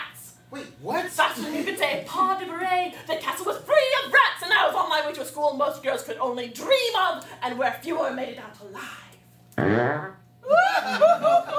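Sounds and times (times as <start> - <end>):
speech: 0.8 - 9.0, 9.6 - 11.5
goose farting: 9.6 - 10.2
laughter: 10.4 - 11.5.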